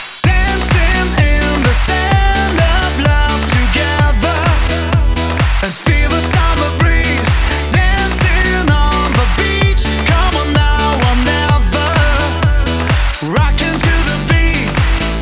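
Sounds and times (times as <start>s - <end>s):
male vocal mix at 128 BPM: 0.2s - 15.2s.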